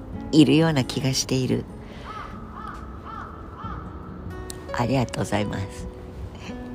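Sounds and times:
speech: 0.3s - 1.8s, 4.8s - 5.9s
crow cawing: 1.8s - 4.3s.

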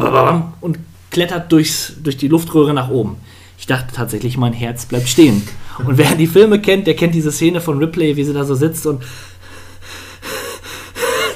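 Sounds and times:
speech: 0.1s - 9.3s
voice imitating frightened heavy gasping breaths: 9.0s - 11.3s.

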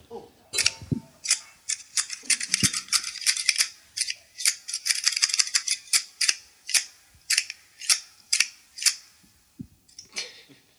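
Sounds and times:
scissors snipping: 0.6s - 9.0s.

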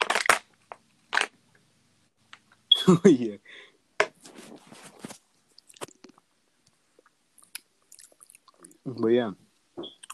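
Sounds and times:
plastic water bottle being crushed: 0.0s - 1.4s
speech: 2.9s - 3.7s, 8.9s - 9.4s.

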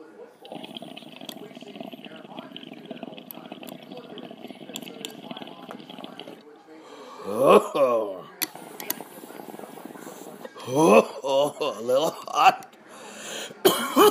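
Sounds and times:
water rig bubbling and gurgling during a dab hit: 0.4s - 6.5s, 8.4s - 12.7s
speech: 7.3s - 8.1s, 10.7s - 11.0s, 11.6s - 12.6s.

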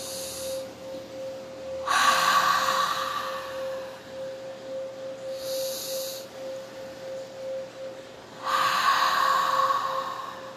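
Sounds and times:
deep slow breathing in a guided meditation: 0.0s - 6.6s, 8.4s - 10.5s
steady humming tone: 0.0s - 10.5s.

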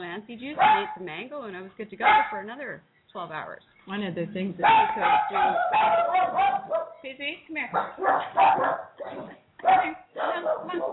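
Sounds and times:
speech: 0.2s - 10.9s
several poodles barking: 0.6s - 1.1s, 2.0s - 2.5s, 4.6s - 7.1s, 7.7s - 10.9s.

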